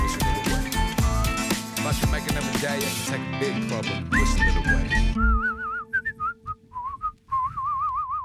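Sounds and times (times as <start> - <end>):
bright clear whistled melody with wavering vibrato: 0.0 - 1.4, 4.0 - 8.2
soft steady musical backing: 0.0 - 6.4
speech: 1.9 - 5.5.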